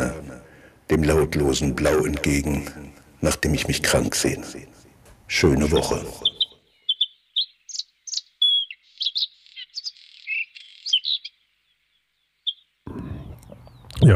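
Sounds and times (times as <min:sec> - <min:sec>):
speech: 0:00.9 - 0:06.3
songbird singing: 0:05.2 - 0:14.1.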